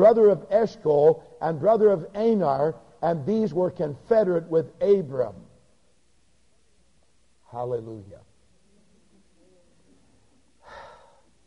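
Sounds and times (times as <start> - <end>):
speech: 0.0 - 5.4, 7.5 - 8.3
heavy breath while catching breath during a Bible reading: 10.6 - 11.3.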